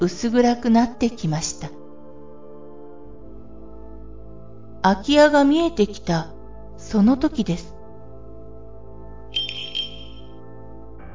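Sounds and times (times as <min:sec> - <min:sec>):
speech: 0:00.0 - 0:01.8, 0:04.8 - 0:07.8
small bell jingling: 0:09.4 - 0:10.4.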